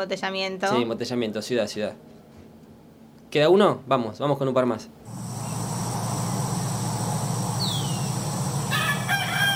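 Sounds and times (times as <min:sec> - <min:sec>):
speech: 0:00.0 - 0:02.2, 0:03.3 - 0:05.2
steady insect-like hum in the countryside: 0:05.1 - 0:09.5
short birdlike chirp: 0:07.4 - 0:08.9
rooster crowing loudly: 0:07.7 - 0:09.5.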